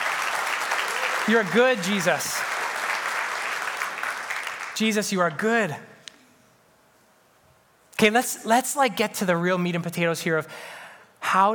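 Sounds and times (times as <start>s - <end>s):
room full of people applauding: 0.0s - 4.8s
speech: 1.3s - 2.5s, 4.8s - 5.9s, 8.0s - 11.5s.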